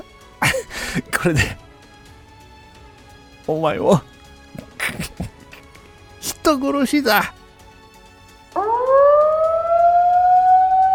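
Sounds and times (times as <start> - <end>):
speech: 1.0 - 1.6, 3.5 - 4.1, 6.5 - 7.4
spillway floodgate opening warning siren wailing: 8.5 - 10.9.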